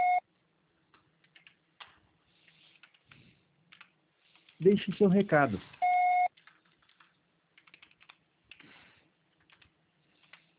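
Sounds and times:
voicemail beep: 0.0s - 0.2s, 5.8s - 6.3s
speech: 4.6s - 5.8s.

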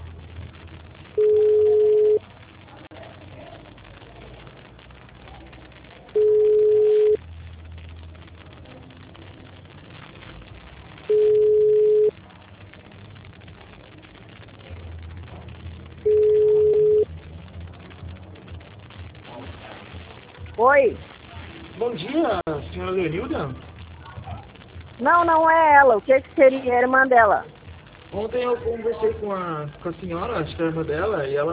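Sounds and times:
faint low telephone line hiss: 0.0s - 31.5s
telephone ringing tone as a call is placed: 1.2s - 2.2s, 6.2s - 7.2s, 11.1s - 12.1s, 16.1s - 17.0s
speech: 22.4s - 23.7s, 25.0s - 31.5s.

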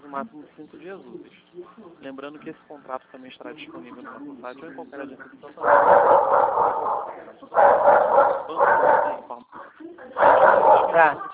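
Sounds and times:
speech: 0.1s - 11.3s
dog barking heard through a phone line during a call: 5.6s - 9.3s, 10.2s - 11.2s.

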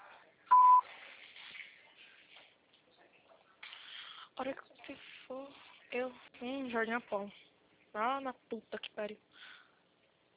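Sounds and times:
faint low noise: 0.0s - 10.3s
voicemail beep before recording a message: 0.5s - 0.9s
speech: 4.4s - 9.5s.

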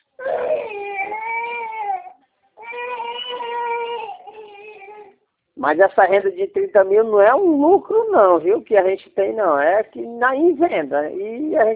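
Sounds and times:
girl crying: 0.2s - 5.2s
speech: 5.6s - 11.7s.

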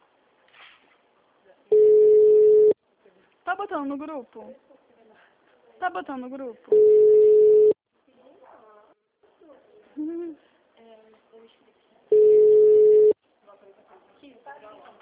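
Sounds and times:
phone line ringback tones: 1.7s - 2.8s, 6.7s - 7.8s, 12.1s - 13.2s
speech: 3.6s - 4.8s, 5.8s - 7.2s.

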